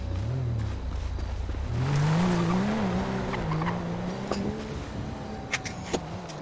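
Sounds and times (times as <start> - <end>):
BMW car engine droning in a video game: 0.0 - 6.4.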